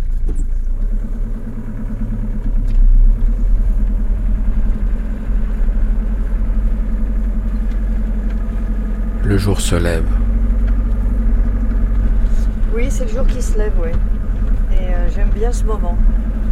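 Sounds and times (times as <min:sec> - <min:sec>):
van engine idling with the heater on: 0:00.0 - 0:16.4
speech: 0:09.4 - 0:10.2, 0:12.8 - 0:14.1, 0:14.8 - 0:16.2.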